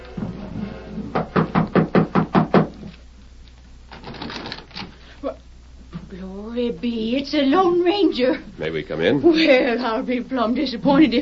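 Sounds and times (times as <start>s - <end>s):
firm knocking on a door: 1.1s - 2.9s
speech: 7.2s - 11.2s.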